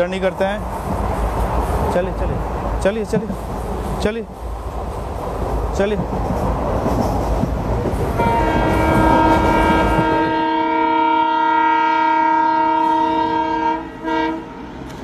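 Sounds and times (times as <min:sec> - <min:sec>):
speech: 0:00.0 - 0:00.9, 0:02.0 - 0:04.5, 0:05.8 - 0:07.2, 0:08.2 - 0:08.5
express train rushing and rumbling at a railway station platform in India: 0:00.0 - 0:15.0
express train horn blast at an Indian railway station platform: 0:08.2 - 0:14.8.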